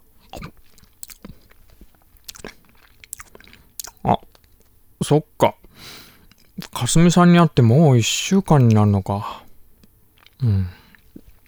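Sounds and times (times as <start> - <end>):
crunchy bites of a moon-viewing sandwich: 0.0 - 4.7, 6.4 - 6.9, 9.8 - 11.4
soft chewing of a moon-viewing sandwich: 0.0 - 7.0, 9.4 - 11.4
speech: 5.1 - 5.6, 6.8 - 9.4, 10.4 - 10.8.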